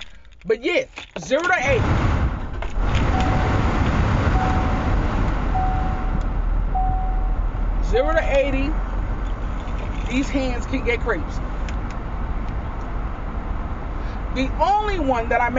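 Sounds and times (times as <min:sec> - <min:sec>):
car air conditioning blowing inside a car: 0:00.0 - 0:15.5
speech: 0:00.4 - 0:02.2, 0:07.9 - 0:08.8, 0:10.1 - 0:11.5, 0:14.4 - 0:15.5
faint recurring tone: 0:04.4 - 0:07.5.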